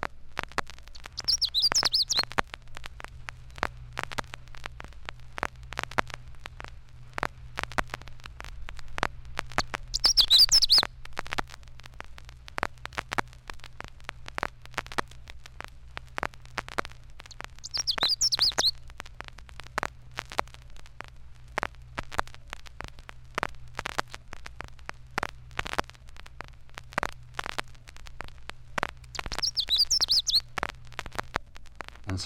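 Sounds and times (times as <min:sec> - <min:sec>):
faint crackle: 0:00.0 - 0:32.2
Canada warbler song: 0:01.0 - 0:02.2, 0:09.9 - 0:10.9, 0:17.6 - 0:18.8, 0:29.1 - 0:30.4.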